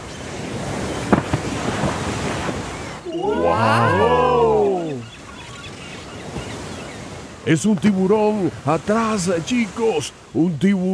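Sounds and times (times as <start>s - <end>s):
surf: 0.0s - 10.9s
wind: 0.0s - 10.9s
blue whale leaping out of the ocean with a large splash: 0.4s - 5.0s
speech: 7.5s - 10.9s.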